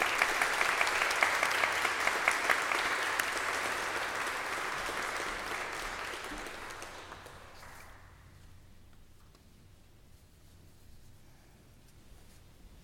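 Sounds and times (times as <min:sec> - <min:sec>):
audience applauding graduates: 0:00.0 - 0:08.2.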